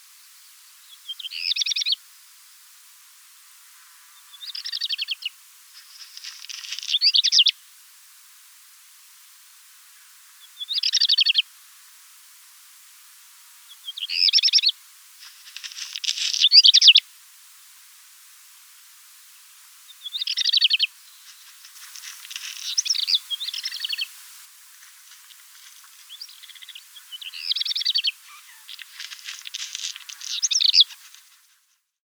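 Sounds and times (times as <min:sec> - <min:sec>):
black redstart singing: 0:00.9 - 0:01.9, 0:04.2 - 0:05.3, 0:06.2 - 0:07.5, 0:10.4 - 0:11.4, 0:13.7 - 0:14.7, 0:15.8 - 0:17.0, 0:19.9 - 0:21.5, 0:22.1 - 0:24.1, 0:26.1 - 0:31.0.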